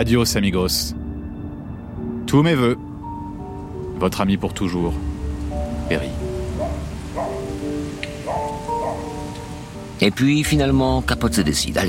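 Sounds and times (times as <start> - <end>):
speech: 0.0 - 1.0, 2.3 - 2.9, 4.0 - 5.1, 5.9 - 6.2, 10.0 - 11.8
heavy rain pouring: 3.0 - 11.8.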